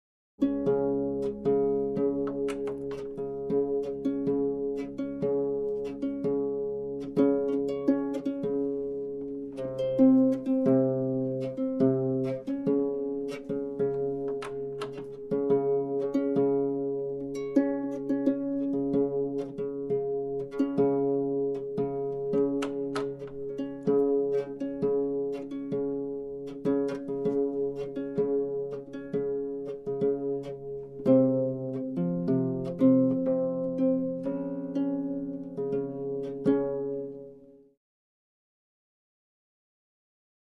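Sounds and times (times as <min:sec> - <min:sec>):
harp being tuned: 0:00.4 - 0:37.6.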